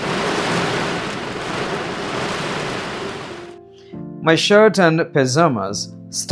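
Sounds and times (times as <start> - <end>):
faint low rumble of thunder: 0.0 - 3.5
heavy rain pouring down: 0.0 - 3.6
speech: 4.2 - 6.3.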